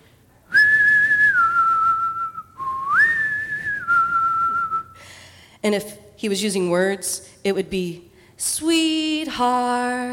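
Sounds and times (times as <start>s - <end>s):
father whistling the family call on a farm near wheat fields: 0.5s - 5.0s
speech: 5.6s - 10.1s.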